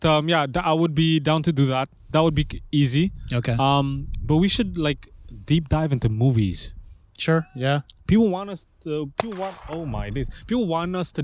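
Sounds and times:
speech: 0.0 - 11.2
sharp gunshot-like pop: 9.2 - 10.1.

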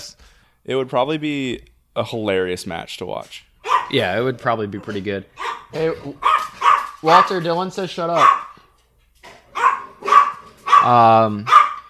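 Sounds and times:
speech: 0.6 - 6.3, 7.0 - 8.4, 10.8 - 11.6
dog barking: 3.6 - 4.0, 4.8 - 7.0, 8.1 - 8.6, 9.5 - 11.8.

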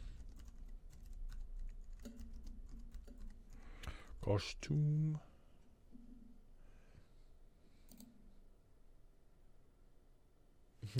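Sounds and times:
typing a search on a computer keyboard: 0.2 - 3.6, 7.9 - 8.1
speech: 4.2 - 5.3.

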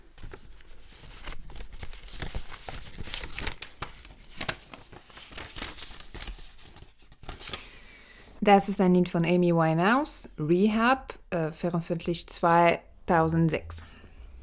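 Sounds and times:
paper slips drawn from an envelope rustling: 0.0 - 7.8
speech: 8.5 - 13.9.

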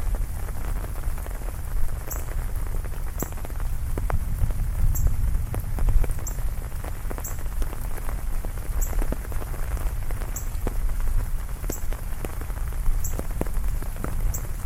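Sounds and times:
heavy rain: 0.0 - 14.6.

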